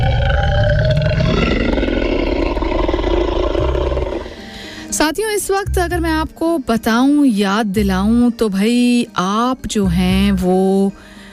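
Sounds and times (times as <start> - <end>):
dinosaur roar sound effect: 0.0 - 4.6
speech: 5.1 - 11.2.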